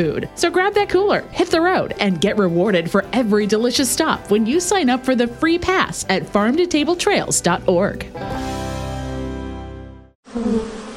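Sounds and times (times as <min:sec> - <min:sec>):
speech: 0:00.0 - 0:08.7
wasps buzzing around a wasp nest above a front door: 0:10.2 - 0:10.9.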